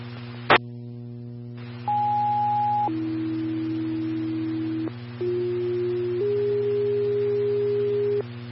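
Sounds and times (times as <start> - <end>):
low radio hum: 0.0 - 8.5
fire dispatch paging tones: 1.9 - 8.3.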